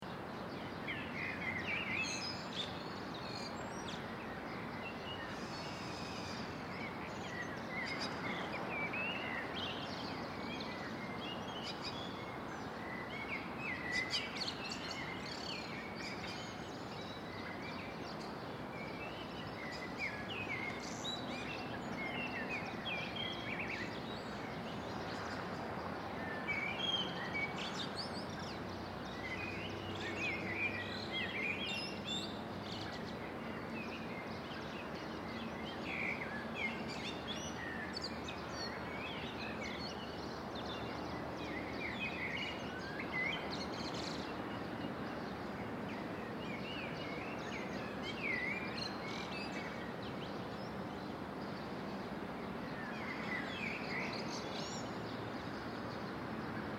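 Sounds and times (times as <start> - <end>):
sunrise birds in a residential area: 0.0 - 56.7.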